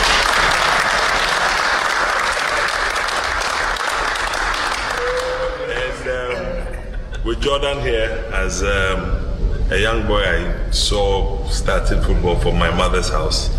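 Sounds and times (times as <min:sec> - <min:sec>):
large audience clapping: 0:00.0 - 0:06.4
laughter: 0:04.8 - 0:07.9
speech: 0:07.4 - 0:13.5.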